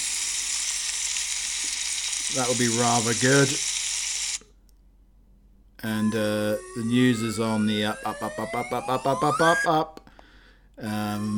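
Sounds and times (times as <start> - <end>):
bacon sizzling in a frying pan: 0.0 - 4.4
speech: 2.3 - 3.7, 5.8 - 10.0, 10.8 - 11.3.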